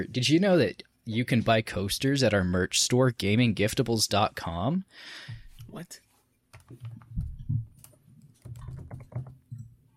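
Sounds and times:
speech: 0:00.0 - 0:06.0, 0:06.7 - 0:07.0
frantic typing on a computer keyboard: 0:06.5 - 0:09.6.

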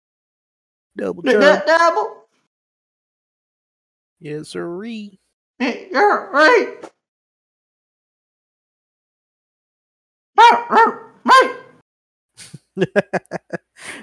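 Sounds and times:
person imitating dog with throaty barks: 0:01.0 - 0:02.2, 0:05.6 - 0:06.8, 0:10.4 - 0:11.7
speech: 0:01.0 - 0:02.2, 0:04.2 - 0:06.9, 0:10.4 - 0:11.5, 0:12.8 - 0:13.5
laughter: 0:01.3 - 0:01.8, 0:12.4 - 0:14.0.

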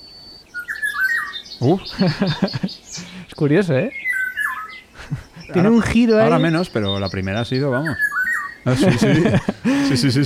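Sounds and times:
Eurasian golden oriole singing: 0:00.0 - 0:03.2, 0:03.9 - 0:08.7
laughter: 0:01.6 - 0:03.3, 0:05.0 - 0:06.6, 0:08.7 - 0:10.2
speech: 0:01.6 - 0:04.0, 0:05.1 - 0:10.2.

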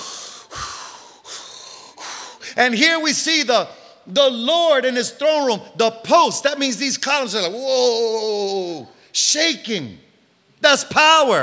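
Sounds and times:
voice imitating deep rhythmic breathing: 0:00.0 - 0:02.6
speech: 0:02.6 - 0:10.0, 0:10.6 - 0:11.4.

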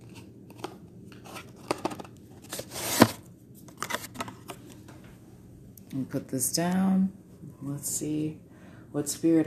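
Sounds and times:
deck of tarot cards being shuffled: 0:00.0 - 0:04.7
speech: 0:06.0 - 0:09.4.

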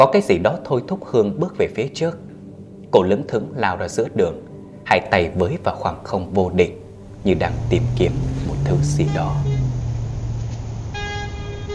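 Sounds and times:
speech: 0:00.0 - 0:02.2, 0:02.9 - 0:09.5
low car engine rumble: 0:06.5 - 0:11.7
car brakes screeching on a street: 0:07.0 - 0:11.7.

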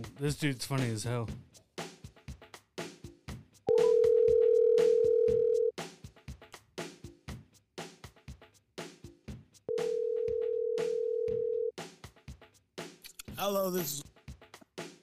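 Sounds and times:
speech: 0:00.0 - 0:01.6, 0:13.4 - 0:14.1
busy percussive beat: 0:00.0 - 0:15.0
outgoing phone call ringback tones: 0:03.7 - 0:05.7, 0:09.7 - 0:11.7.

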